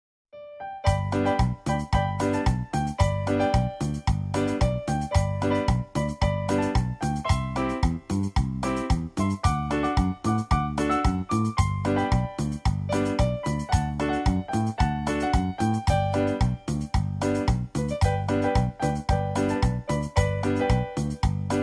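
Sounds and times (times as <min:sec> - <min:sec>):
festive Christmas cumbia rhythms: 0:00.8 - 0:21.6.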